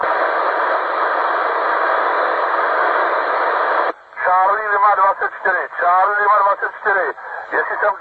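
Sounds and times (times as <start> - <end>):
radio static hiss on a fading radio transmission: 0.0 - 8.0
speech: 4.8 - 8.0.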